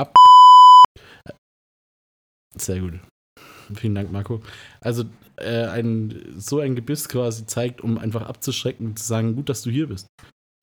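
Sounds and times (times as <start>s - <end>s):
electronic censor bleep tone over spoken words: 0.1s - 0.9s
speech: 2.6s - 3.1s, 3.7s - 10.4s.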